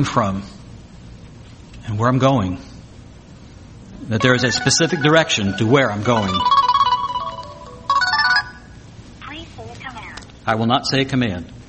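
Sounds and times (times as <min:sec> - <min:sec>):
speech: 0:00.0 - 0:00.6, 0:01.9 - 0:02.7, 0:04.1 - 0:06.6, 0:10.4 - 0:11.6
mobile phone ringtone with bright electronic melody: 0:04.2 - 0:08.8.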